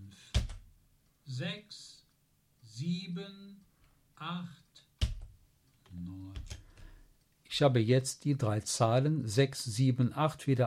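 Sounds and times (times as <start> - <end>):
F11 and F12 keys pressed on a computer keyboard: 0.4 - 0.7, 5.0 - 5.4, 6.3 - 6.9
speech: 3.1 - 3.6, 4.2 - 4.6, 7.6 - 10.6.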